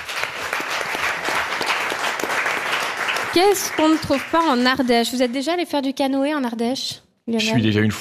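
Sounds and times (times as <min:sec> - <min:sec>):
studio audience applauding: 0:00.0 - 0:05.8
speech: 0:03.3 - 0:07.9.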